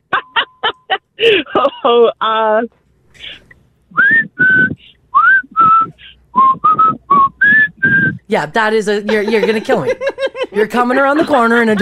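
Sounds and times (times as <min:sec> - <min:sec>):
person making brief vocal sounds and chuckles: 0:00.0 - 0:02.1, 0:03.2 - 0:04.9, 0:05.5 - 0:08.2, 0:09.0 - 0:11.8
speech: 0:01.2 - 0:03.4, 0:08.3 - 0:11.8
person whistling a short tune: 0:04.0 - 0:08.2.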